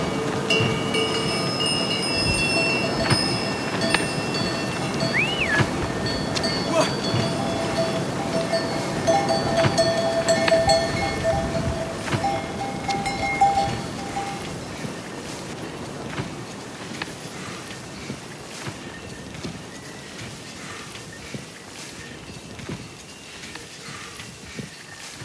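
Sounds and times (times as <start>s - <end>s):
bells clinking and jingling from a passing yak train: 0.0s - 15.0s, 22.2s - 25.0s
voices of yak train handlers: 0.0s - 22.3s
walking: 0.0s - 25.2s
local whistles: 2.3s - 5.7s
breathing: 17.2s - 18.8s, 20.2s - 22.2s, 23.1s - 25.2s.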